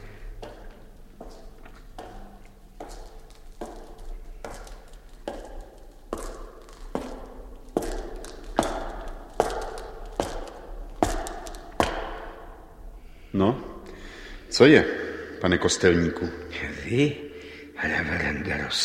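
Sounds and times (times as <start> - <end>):
footsteps at walking pace: 0.0 - 14.7
speech: 14.6 - 17.2, 17.9 - 18.8.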